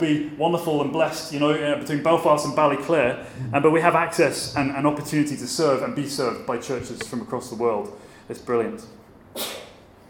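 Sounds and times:
speech: 0.0 - 9.6
sneeze: 9.3 - 9.9.

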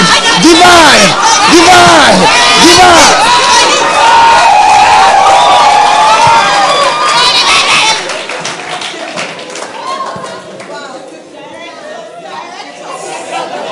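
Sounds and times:
large crowd of protesters shouting: 0.0 - 8.0
soft continuous crowd murmur and chatter: 0.0 - 13.6
scattered claps: 6.1 - 10.8.

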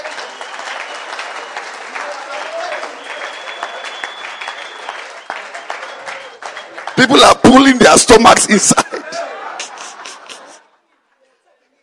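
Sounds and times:
church congregation clapping hands during a service: 0.0 - 8.8
speech: 7.0 - 8.9
laughter: 8.4 - 11.0.

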